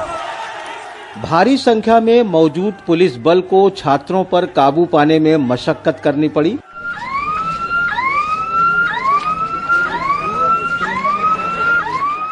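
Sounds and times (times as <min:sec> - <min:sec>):
street noise: 0:00.0 - 0:12.3
speech: 0:01.2 - 0:06.7
fire engine siren at student protest: 0:06.6 - 0:12.3.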